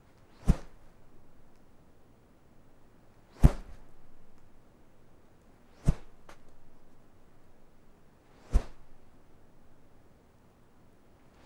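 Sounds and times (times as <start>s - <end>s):
single soft rope whoosh: 0.3s - 1.0s, 3.3s - 4.3s, 5.7s - 6.9s, 8.3s - 9.1s.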